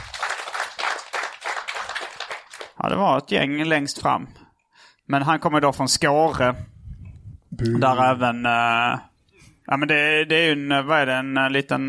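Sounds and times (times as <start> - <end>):
audience applause with dense brisk clapping: 0.0 - 2.8
speech: 2.8 - 4.4, 5.1 - 6.7, 7.6 - 9.1, 9.7 - 11.8.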